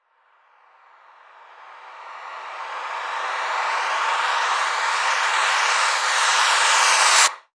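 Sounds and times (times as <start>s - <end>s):
uplifter effect: 1.8s - 7.4s.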